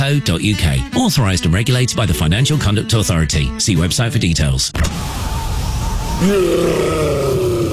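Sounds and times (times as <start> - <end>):
speech: 0.0 - 5.4, 6.2 - 7.5
low groaning monster roar of a yeti: 6.2 - 7.7.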